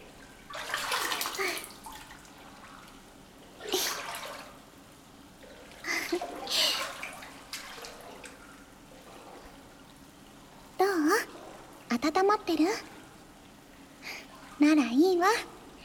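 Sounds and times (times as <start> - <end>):
hot bath water poured over a person in a bathtub: 0.0 - 15.8.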